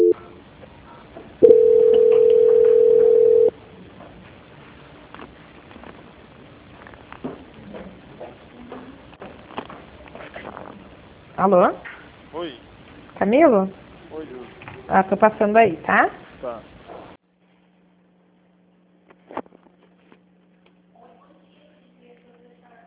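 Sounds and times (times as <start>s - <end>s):
telephone line tone while a call is transferred to an extension: 0.0s - 0.2s, 1.4s - 3.5s
speech: 11.4s - 12.6s, 13.2s - 16.7s.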